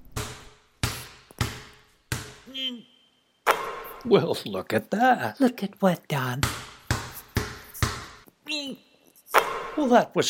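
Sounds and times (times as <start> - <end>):
basketball dribbled between a player's legs: 0.0 - 2.5, 3.5 - 4.0, 6.4 - 8.3, 9.4 - 9.8
speech: 2.5 - 3.0, 4.0 - 6.7, 8.6 - 8.9, 9.8 - 10.2.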